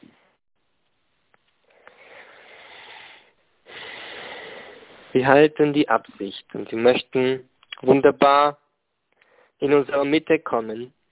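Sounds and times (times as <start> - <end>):
person breathing slowly and deeply in and out: 1.7 - 5.2
speech: 5.2 - 8.6, 9.6 - 11.0.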